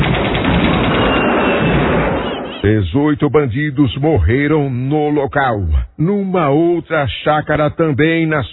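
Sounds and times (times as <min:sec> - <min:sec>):
dense gunfire barrage: 0:00.0 - 0:02.7
deep booming: 0:00.0 - 0:06.0
speech: 0:02.7 - 0:08.5.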